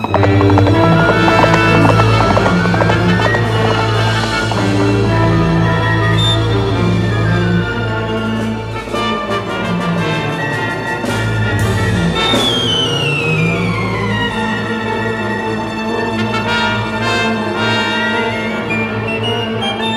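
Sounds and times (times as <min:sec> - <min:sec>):
horse hooves clip-clopping: 0:00.0 - 0:05.4
sustained tonal musical backdrop: 0:00.0 - 0:19.8.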